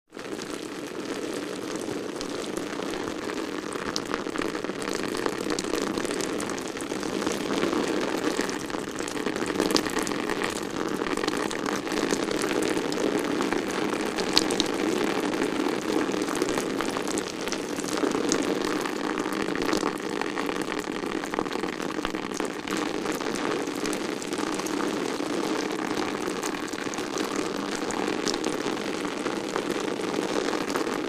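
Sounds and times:
splatty raindrops on raincoat: 0.1 - 31.0.

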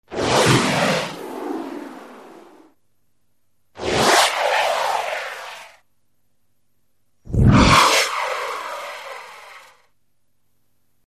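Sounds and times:
flaming debris flyby: 0.1 - 2.7, 3.8 - 5.8, 7.3 - 9.9.

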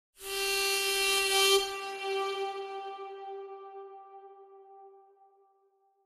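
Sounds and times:
harmonica playing: 0.2 - 4.2.

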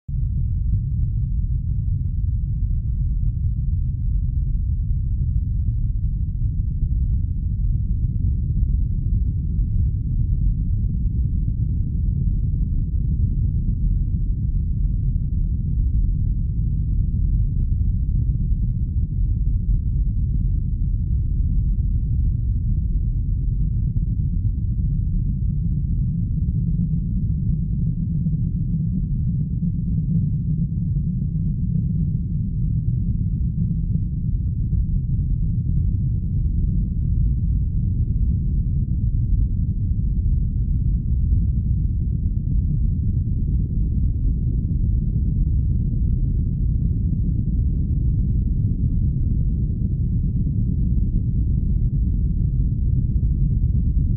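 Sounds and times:
low frequency earthquake rumble: 0.0 - 54.1.

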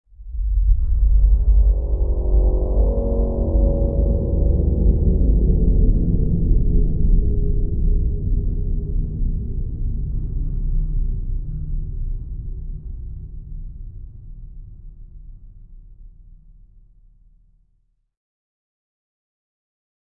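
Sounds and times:
eerie low distorted music: 0.2 - 16.0.

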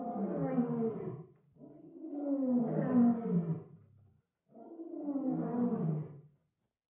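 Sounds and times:
lion roaring with low moaning calls: 0.1 - 3.7, 4.6 - 6.2.

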